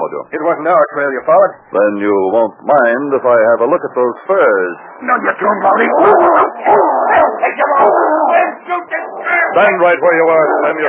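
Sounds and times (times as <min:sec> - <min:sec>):
speech: 0:00.1 - 0:08.2, 0:09.5 - 0:10.8
trained dog snarling and barking while attacking a man: 0:05.6 - 0:10.8.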